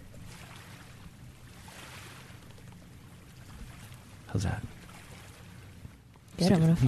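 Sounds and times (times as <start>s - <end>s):
gentle waves lapping on a mountain lake: 0.0s - 6.8s
speech: 4.3s - 4.8s, 6.4s - 6.8s.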